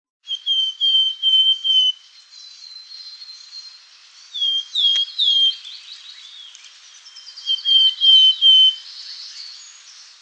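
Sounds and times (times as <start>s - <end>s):
willow tit giving clear whistled notes: 0.2s - 10.1s.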